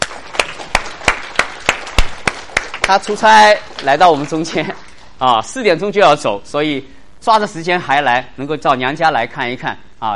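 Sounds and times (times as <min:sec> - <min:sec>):
church congregation clapping in unison: 0:00.0 - 0:05.1
speech: 0:02.9 - 0:10.1.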